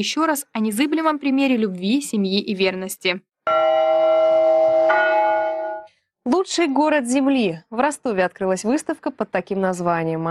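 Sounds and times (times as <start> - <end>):
speech: 0.0 - 3.8, 6.3 - 10.2
church bells ringing during a divine liturgy in Rostov: 3.5 - 5.9.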